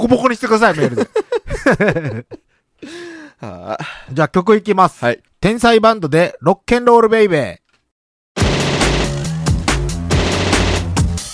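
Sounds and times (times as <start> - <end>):
speech: 0.0 - 7.6
laughter: 0.7 - 2.4
machine-gun fire sound effect: 8.4 - 11.2
heavy hits: 8.4 - 11.3.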